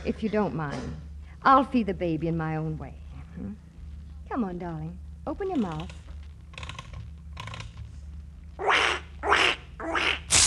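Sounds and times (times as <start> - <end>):
speech: 0.0 - 3.6, 4.3 - 6.0
low steady hum: 0.0 - 10.4
broken toy duck quacking: 8.6 - 10.2.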